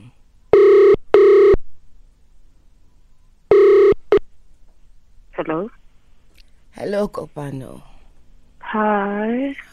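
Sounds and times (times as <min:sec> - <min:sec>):
phone ringtone ringing in a double-burst pattern: 0:00.6 - 0:01.6, 0:03.5 - 0:04.0
speech: 0:05.5 - 0:05.8, 0:06.8 - 0:07.9, 0:08.7 - 0:09.7.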